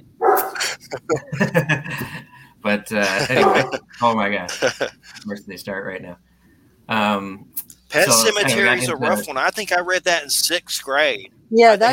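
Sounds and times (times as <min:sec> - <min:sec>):
dog barking: 0:00.2 - 0:00.6, 0:03.3 - 0:03.8
laughter: 0:00.6 - 0:05.4, 0:08.0 - 0:09.3
speech: 0:00.9 - 0:02.1, 0:02.9 - 0:06.3, 0:06.9 - 0:11.9.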